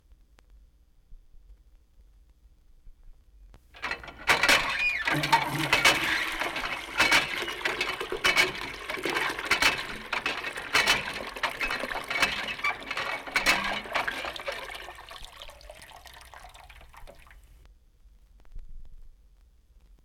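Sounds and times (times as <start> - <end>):
squeaky water pump: 3.8 - 17.4.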